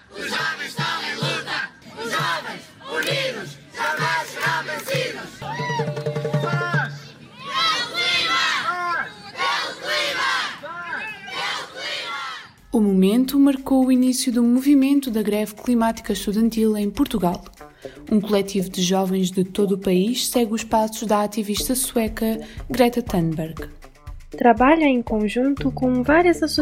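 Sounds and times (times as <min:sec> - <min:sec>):
students chanting climate protest slogans in unison in Portugal: 0:00.0 - 0:12.7
speech: 0:13.4 - 0:26.5.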